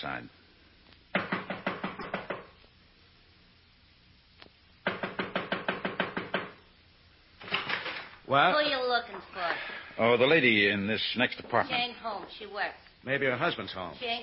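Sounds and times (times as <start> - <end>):
speech: 0.0 - 0.4, 8.3 - 14.2
knocking on an apartment door: 1.1 - 2.5, 4.8 - 6.6.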